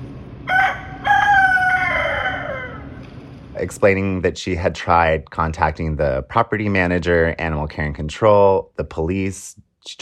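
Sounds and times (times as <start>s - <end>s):
rooster crowing: 0.4s - 3.0s
speech: 3.6s - 10.0s.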